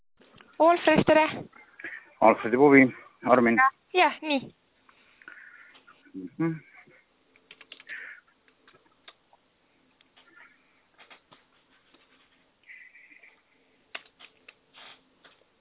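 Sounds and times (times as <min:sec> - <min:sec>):
speech: 0:00.6 - 0:01.6, 0:02.2 - 0:04.6, 0:06.1 - 0:06.7
typing on a computer keyboard: 0:07.4 - 0:07.9.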